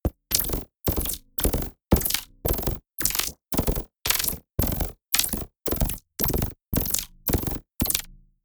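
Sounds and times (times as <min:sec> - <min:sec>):
sci-fi machine gun: 0:00.3 - 0:08.1.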